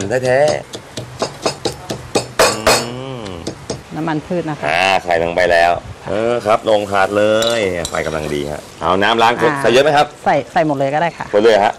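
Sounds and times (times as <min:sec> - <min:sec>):
speech: 0:00.0 - 0:00.8, 0:04.0 - 0:11.7
garlic, chili and shallot pounded coarsely in a mortar: 0:00.0 - 0:03.9.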